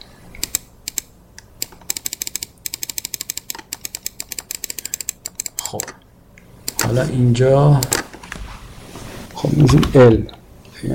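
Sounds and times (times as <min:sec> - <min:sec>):
typing on a computer keyboard: 0:00.4 - 0:05.9
speech: 0:05.7 - 0:06.0, 0:06.9 - 0:08.0, 0:09.4 - 0:10.9.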